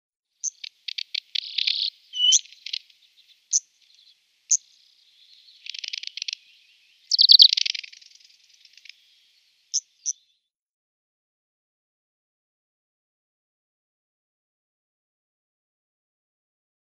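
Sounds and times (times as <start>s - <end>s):
Arctic Warbler calls: 0.4s - 10.5s.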